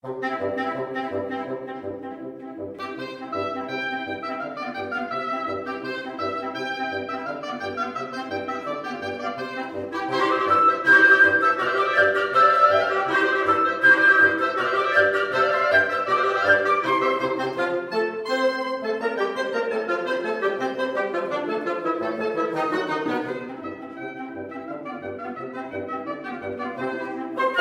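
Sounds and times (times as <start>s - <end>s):
woodwind quartet: 0.0s - 27.5s.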